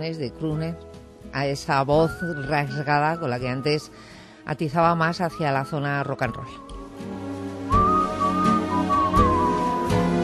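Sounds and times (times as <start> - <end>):
speech: 0.0 - 7.2
man whistling a melody: 7.7 - 10.1.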